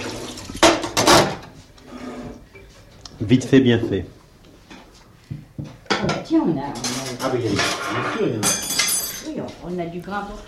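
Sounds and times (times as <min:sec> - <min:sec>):
water trickling: 0:00.0 - 0:00.9
water gushing from a tap into a sink while washing dishes: 0:00.0 - 0:01.3
faint kitchen clatter: 0:00.0 - 0:10.4
speech: 0:03.2 - 0:04.2, 0:06.4 - 0:08.6, 0:09.6 - 0:10.4.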